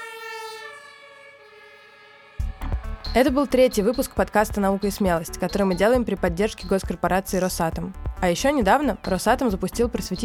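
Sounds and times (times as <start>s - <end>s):
emergency vehicle siren wailing: 0.0s - 7.0s
speech: 3.1s - 10.2s.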